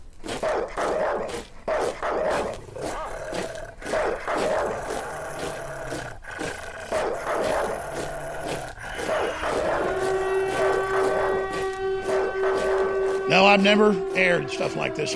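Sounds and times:
many dogs barking: 0:00.3 - 0:14.2
steady whine: 0:09.1 - 0:15.1
rumbling droning background: 0:09.3 - 0:15.1
speech: 0:13.6 - 0:15.1.

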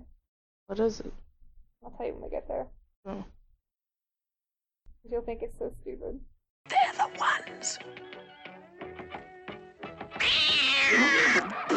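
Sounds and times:
speech: 0:00.7 - 0:01.2, 0:01.8 - 0:03.4, 0:05.0 - 0:08.6
cat meowing and yowling: 0:10.2 - 0:11.6.

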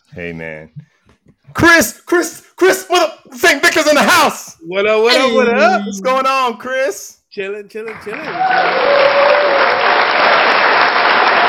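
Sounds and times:
speech: 0:00.1 - 0:00.9, 0:01.5 - 0:10.4
applause from a small group: 0:07.8 - 0:11.4
faint whoop or cheer: 0:08.3 - 0:10.0.

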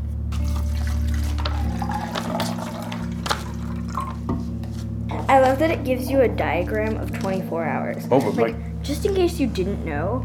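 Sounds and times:
low steady hum: 0:00.0 - 0:10.2
water splashing and trickling into a small sea monkey hatching tank: 0:00.3 - 0:04.2
speech: 0:05.3 - 0:10.2.

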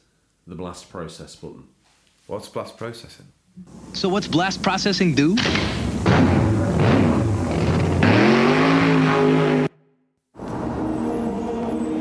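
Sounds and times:
speech: 0:00.5 - 0:07.7
steady roaring noise: 0:05.9 - 0:09.7, 0:10.4 - 0:11.9
car engine revving and accelerating: 0:06.0 - 0:09.7, 0:10.4 - 0:11.9.

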